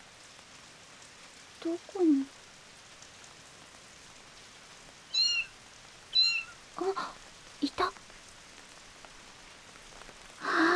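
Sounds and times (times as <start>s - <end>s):
faint hiss: 0.0s - 10.7s
speech: 1.6s - 2.4s
kitten meowing: 5.1s - 5.6s, 6.2s - 6.6s.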